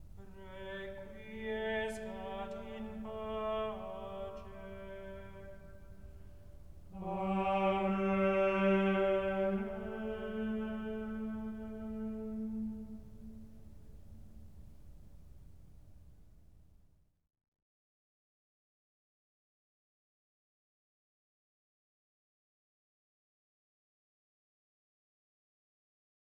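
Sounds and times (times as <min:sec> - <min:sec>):
Gregorian chant of a requiem mass: 0:00.0 - 0:14.2.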